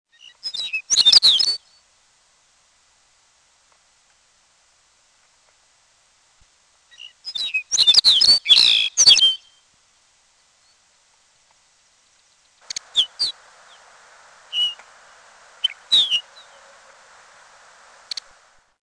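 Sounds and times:
Lapland longspur chirping: 0.1 - 1.8, 6.9 - 9.6, 12.1 - 18.7
background hiss: 0.1 - 18.8.

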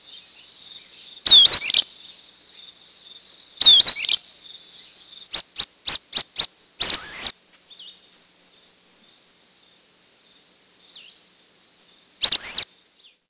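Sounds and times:
Sulphur-bellied Flycatcher giving shrill squeaky twisting calls: 0.0 - 8.0, 12.2 - 13.2.

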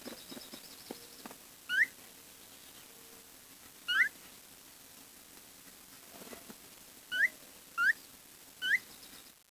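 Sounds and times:
bird whistling: 8.6 - 8.8.

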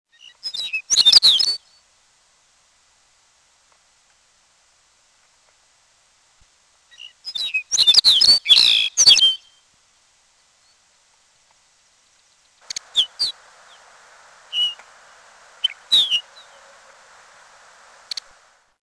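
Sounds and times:
Lapland Longspur giving short calls and whistled slurred notes: 0.1 - 1.8, 6.9 - 9.6, 12.2 - 18.6
background hiss: 0.1 - 18.8.

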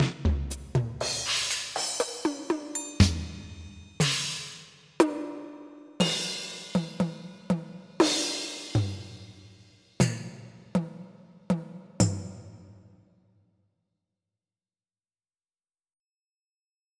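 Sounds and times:
damp pop drums: 0.0 - 12.8.

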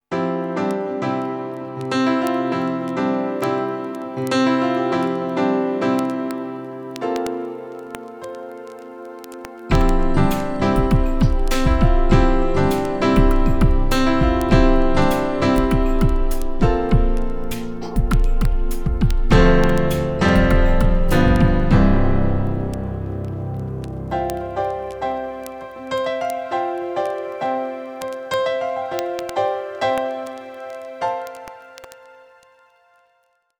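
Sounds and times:
piano: 0.0 - 33.5
drums: 9.7 - 22.2.

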